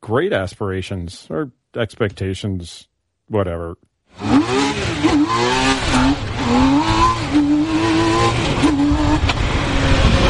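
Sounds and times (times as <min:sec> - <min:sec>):
speech: 0:00.1 - 0:06.7
three-wheeled sports car accelerating hard: 0:04.2 - 0:10.2.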